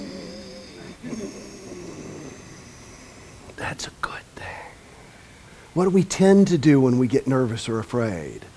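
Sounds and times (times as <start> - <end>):
speech: 3.7 - 4.2, 5.8 - 8.5
ujjayi breath drawn through a constricted throat: 4.4 - 5.8.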